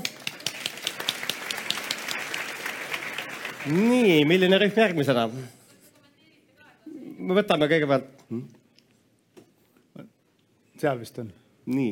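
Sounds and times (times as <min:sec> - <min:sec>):
room full of people applauding: 0:00.0 - 0:04.6
speech: 0:03.6 - 0:05.6, 0:07.3 - 0:08.6, 0:10.8 - 0:11.9.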